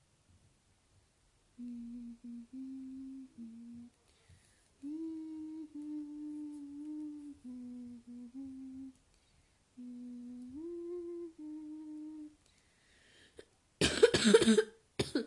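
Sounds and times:
person humming or singing notes: 0:01.6 - 0:04.0, 0:04.8 - 0:09.0, 0:09.8 - 0:12.4
harsh coughs: 0:13.8 - 0:15.2.

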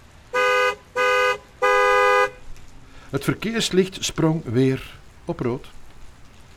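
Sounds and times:
American Chevrolet car horn honking: 0:00.3 - 0:02.4
speech: 0:03.1 - 0:05.8.

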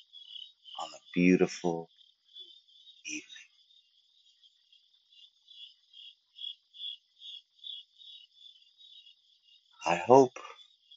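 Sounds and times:
crickets chirping on an evening outdoors: 0:00.0 - 0:10.9
speech: 0:00.8 - 0:02.0, 0:09.9 - 0:10.5.

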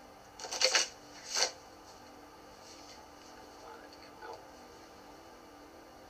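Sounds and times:
new deck of cards shuffling: 0:00.4 - 0:01.6.

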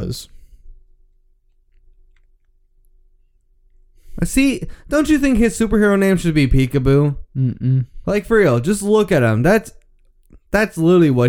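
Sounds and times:
speech: 0:00.0 - 0:00.4, 0:04.2 - 0:09.8, 0:10.5 - 0:11.2
cartoon crunching and chewing as a character swallows a steering wheel: 0:01.5 - 0:02.6.

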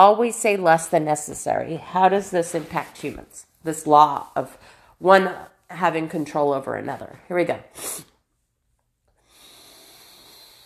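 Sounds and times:
speech: 0:00.0 - 0:08.1
slow breath from a 4-7-8 breathing exercise: 0:04.5 - 0:05.0, 0:09.1 - 0:10.6.

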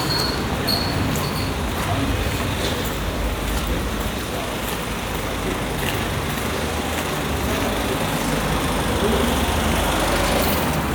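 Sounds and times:
traffic on a busy road at midday: 0:00.0 - 0:10.9.

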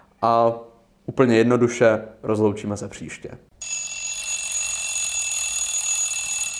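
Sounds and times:
speech: 0:00.2 - 0:03.5
alarm clock ringing shrill and high-pitched: 0:03.6 - 0:06.5.

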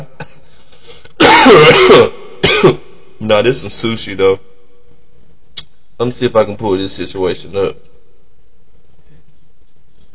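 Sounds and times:
raspy coughing: 0:00.0 - 0:03.0
throat clearing: 0:01.2 - 0:02.9
speech: 0:01.5 - 0:04.5, 0:06.0 - 0:07.9.

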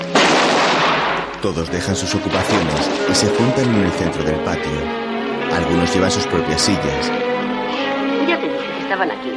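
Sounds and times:
rifle fired into the air in a farm courtyard: 0:00.1 - 0:01.3
speech: 0:01.4 - 0:07.5, 0:08.2 - 0:09.3.

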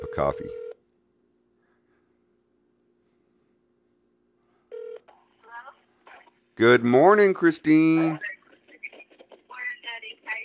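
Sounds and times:
telephone ringing tone of an outgoing call: 0:00.0 - 0:00.8, 0:04.7 - 0:05.0
speech: 0:00.1 - 0:00.6, 0:06.6 - 0:08.3.

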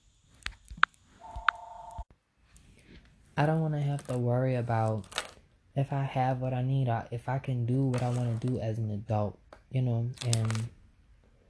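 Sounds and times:
telephone ringing with electronic tones: 0:01.2 - 0:02.1
speech: 0:03.4 - 0:05.2, 0:05.8 - 0:10.8.

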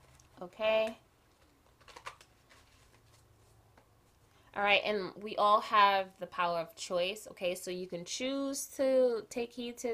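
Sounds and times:
tarot cards being shuffled: 0:00.0 - 0:04.2
speech: 0:00.4 - 0:01.0, 0:04.6 - 0:09.9.

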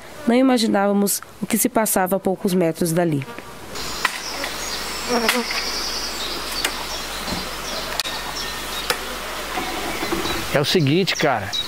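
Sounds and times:
speech: 0:00.2 - 0:03.5, 0:05.1 - 0:05.7, 0:10.6 - 0:11.6
many honeybees buzzing around apiary hive boxes: 0:02.9 - 0:11.3
bird chirp: 0:03.8 - 0:11.6.

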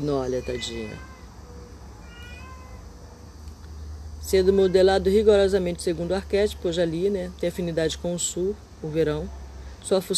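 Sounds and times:
speech: 0:00.0 - 0:01.1, 0:04.3 - 0:10.1
cat meowing with drawn-out wavering cries: 0:00.0 - 0:03.0, 0:04.4 - 0:05.2.

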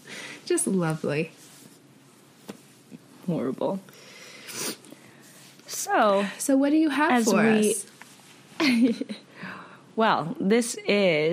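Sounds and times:
speech: 0:00.5 - 0:01.4, 0:03.3 - 0:04.1, 0:05.8 - 0:07.9, 0:08.6 - 0:09.1, 0:10.0 - 0:11.3
sick person sniffling: 0:04.2 - 0:04.9.

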